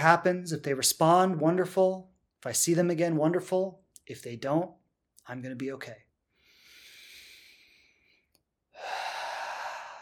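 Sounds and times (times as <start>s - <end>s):
speech: 0.0s - 6.0s
deep breathing: 6.3s - 9.9s.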